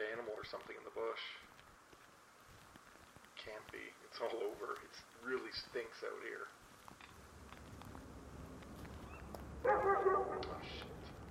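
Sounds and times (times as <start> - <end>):
low outdoor hum: 0.0 - 11.3
speech: 0.2 - 1.6, 3.4 - 6.6
distant dog barking: 9.2 - 11.0.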